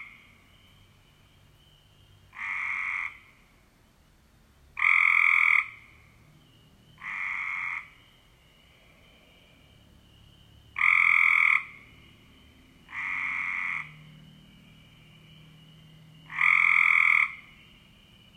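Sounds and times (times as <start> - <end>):
Cope's gray treefrog giving buzzy trills: 1.6 - 3.4, 4.8 - 6.1, 6.9 - 18.3.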